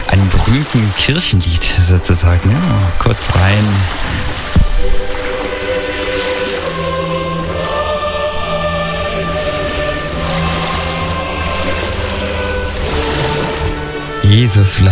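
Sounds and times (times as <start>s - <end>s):
sustained musical tones in a song intro: 0.0s - 14.9s
waves washing on a beach: 0.0s - 14.9s
speech: 0.5s - 5.3s, 14.3s - 14.9s
brief low thump: 4.2s - 5.2s.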